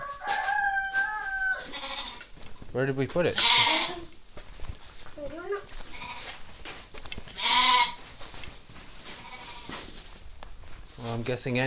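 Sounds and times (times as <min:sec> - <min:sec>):
smaller animal cries: 0:00.9 - 0:02.2, 0:03.4 - 0:04.1, 0:07.4 - 0:08.0
goat bleating: 0:01.6 - 0:02.3, 0:03.3 - 0:04.1, 0:05.8 - 0:06.4, 0:07.3 - 0:08.1, 0:09.1 - 0:09.8
speech: 0:02.8 - 0:03.8, 0:11.2 - 0:11.6.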